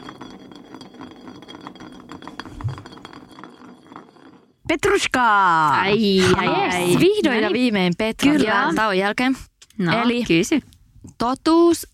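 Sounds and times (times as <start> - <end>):
glass bottle spinning on a surface during a spin-the-bottle game: 0.0 - 8.9
speech: 4.7 - 11.9.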